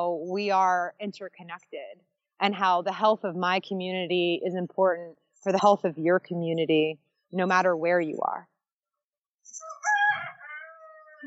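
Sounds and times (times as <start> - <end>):
speech: 0.0 - 8.5
rooster crowing: 9.6 - 11.2.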